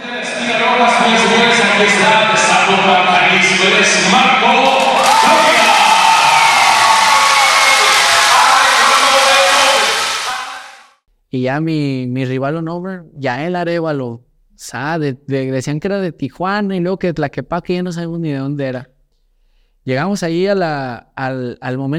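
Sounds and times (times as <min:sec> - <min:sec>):
large crowd shouting and cheering at a fight: 0:00.0 - 0:11.0
speech: 0:02.7 - 0:05.4, 0:11.3 - 0:18.9, 0:19.8 - 0:21.9.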